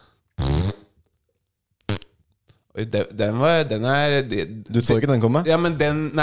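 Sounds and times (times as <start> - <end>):
fart: 0.4 - 1.0, 1.9 - 2.2
speech: 2.8 - 6.2.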